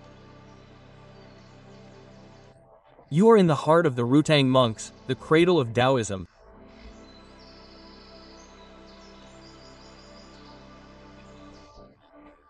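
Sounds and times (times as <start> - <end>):
dense forest ambience: 0.0 - 2.5, 6.7 - 11.8
birds chirping and singing in a dense forest: 0.4 - 2.5, 6.8 - 11.7
speech: 3.1 - 6.3.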